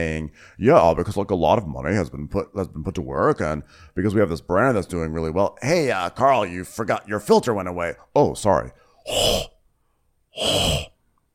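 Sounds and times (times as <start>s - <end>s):
speech: 0.0s - 9.5s, 10.4s - 10.9s
heavy breaths blown into a webcam microphone during a video call: 8.8s - 9.5s, 10.4s - 10.9s.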